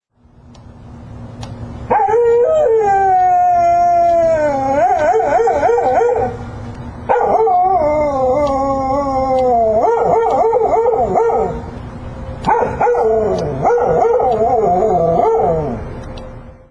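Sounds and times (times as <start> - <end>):
howling: 1.9 - 6.5, 7.1 - 11.7, 12.4 - 16.3.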